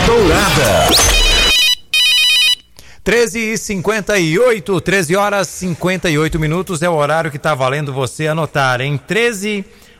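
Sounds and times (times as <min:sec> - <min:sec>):
telephone ringing with a bright electronic warble: 0:01.0 - 0:02.7
speech: 0:03.1 - 0:09.8.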